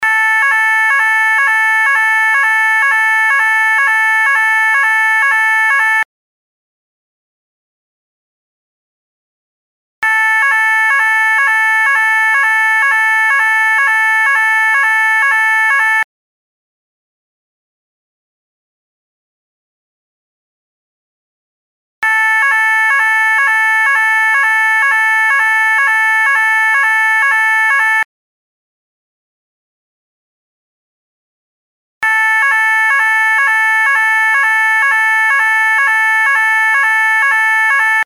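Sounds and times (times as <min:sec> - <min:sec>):
siren signalling resumption of play: 0:00.0 - 0:06.1, 0:10.0 - 0:16.1, 0:22.0 - 0:28.1, 0:32.0 - 0:38.0.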